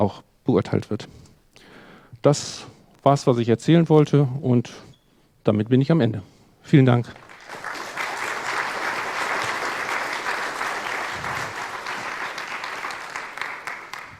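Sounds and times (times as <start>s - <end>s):
speech: 0.0s - 1.3s, 2.2s - 7.2s
audience applause: 7.2s - 14.1s.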